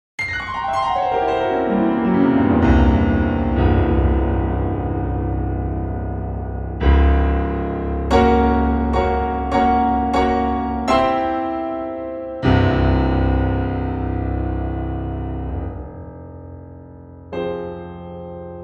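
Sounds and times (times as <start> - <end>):
Bosendorfer 280 concert piano: 0.2 - 18.6.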